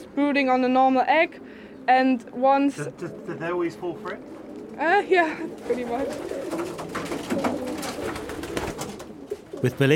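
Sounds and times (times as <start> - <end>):
feral city pigeons cooing in Berlin: 0.0 - 9.8
speech: 0.2 - 7.5, 9.6 - 9.9.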